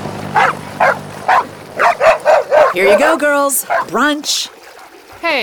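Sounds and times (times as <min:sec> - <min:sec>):
dogs barking: 0:00.2 - 0:05.2
speech: 0:02.8 - 0:04.6, 0:05.2 - 0:05.4.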